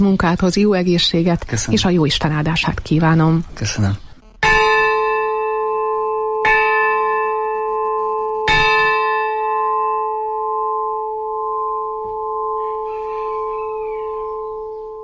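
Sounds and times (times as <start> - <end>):
speech: 0.0 - 4.1
church bell tolling: 4.4 - 15.0.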